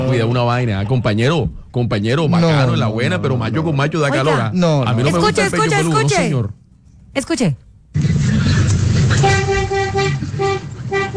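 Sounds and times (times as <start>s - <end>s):
speech: 0.1s - 8.2s
road and engine noise: 7.9s - 11.1s
double-axle truck horn honking: 9.2s - 11.1s.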